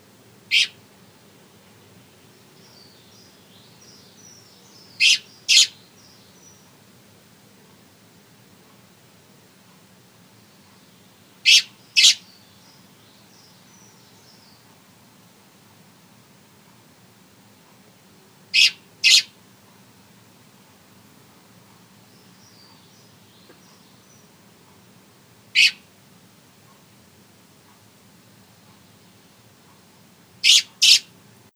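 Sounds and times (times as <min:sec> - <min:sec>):
young blackbird: 0:00.5 - 0:00.8, 0:02.2 - 0:06.7, 0:10.7 - 0:14.8, 0:18.5 - 0:19.4, 0:22.0 - 0:24.4, 0:25.6 - 0:25.9, 0:30.4 - 0:31.2.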